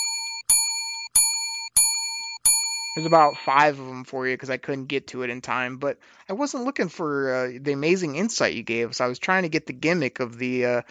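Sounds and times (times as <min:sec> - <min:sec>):
bright bell dinging: 0:00.0 - 0:03.6
speech: 0:03.0 - 0:10.8.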